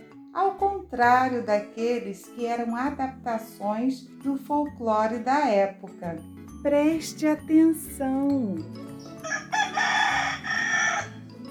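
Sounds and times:
speech: 0.4s - 8.9s
rooster crowing: 9.2s - 11.2s.

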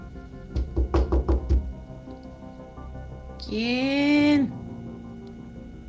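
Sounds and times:
quick knocks on a door: 0.5s - 1.8s
speech: 3.5s - 4.6s.

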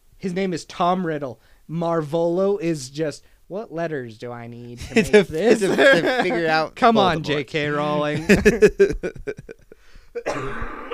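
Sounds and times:
speech: 0.2s - 10.9s
laughter: 4.8s - 10.6s
loud cough: 10.2s - 10.9s
quick throaty throat clearing: 10.2s - 10.9s.

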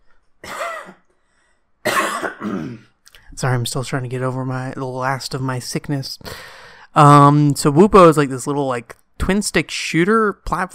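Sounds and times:
person coughing: 0.4s - 1.0s, 1.8s - 3.0s
speech: 2.5s - 10.7s.

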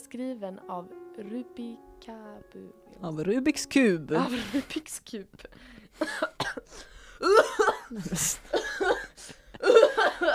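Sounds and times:
speech: 0.1s - 9.0s
person gasping: 5.5s - 6.0s, 6.7s - 7.3s
harsh throaty coughing fit: 6.0s - 10.1s.

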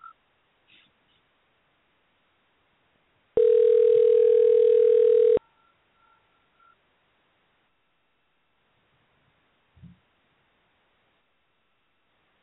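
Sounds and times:
ringback tone of an unanswered outgoing phone call: 3.4s - 6.3s.

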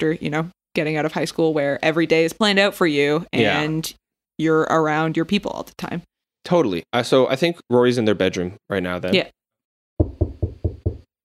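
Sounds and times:
speech: 0.0s - 9.4s
knocking on a wooden bedroom door: 10.0s - 11.1s.

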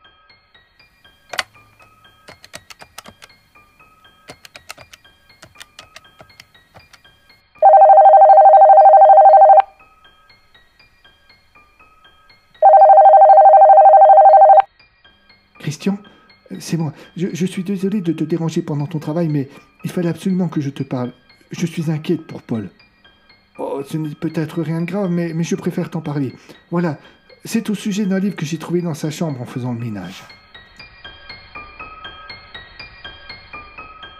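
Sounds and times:
telephone dialing clicks and beeps: 7.6s - 9.7s, 12.6s - 14.7s
telephone ringing tones: 7.6s - 9.8s, 12.6s - 14.7s
speech: 16.7s - 22.8s, 23.8s - 30.4s.

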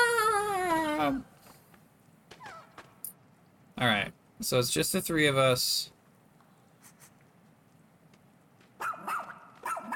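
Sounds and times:
speech: 1.0s - 1.3s, 3.8s - 6.0s
video game dog barking: 8.8s - 9.9s.

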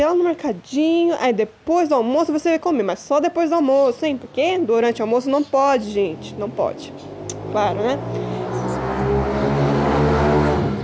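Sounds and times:
speech: 0.0s - 8.4s
motorcycle engine droning outside: 4.9s - 10.8s.

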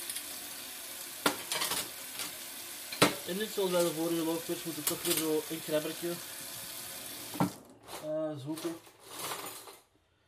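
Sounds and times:
tap water running: 0.0s - 7.6s
speech: 3.3s - 6.3s, 8.0s - 8.9s.

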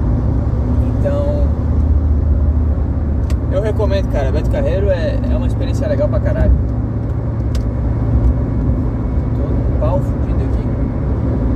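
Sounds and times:
car interior rumble from engine and tires on the road at speed: 0.0s - 11.5s
speech: 3.8s - 6.8s, 10.0s - 10.3s.

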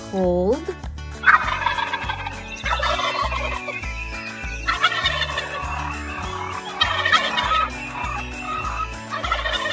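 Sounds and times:
speech: 0.1s - 0.9s
turkey gobbling: 1.2s - 3.8s, 4.5s - 9.7s.

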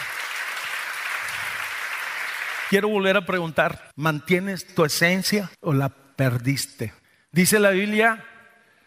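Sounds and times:
crowd at a sermon applauding: 0.0s - 2.7s
speech: 2.7s - 8.3s.

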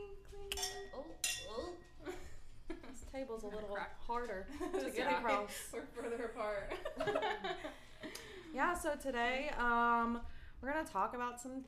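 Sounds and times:
glasses clinking in a toast: 0.5s - 1.7s
speech: 3.1s - 7.9s, 8.5s - 11.6s
laughter: 4.5s - 8.2s.

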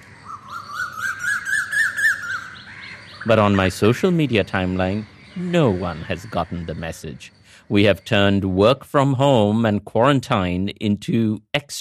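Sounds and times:
birds chirping and twittering in a moringa tree: 0.0s - 10.9s
speech: 3.2s - 11.8s.

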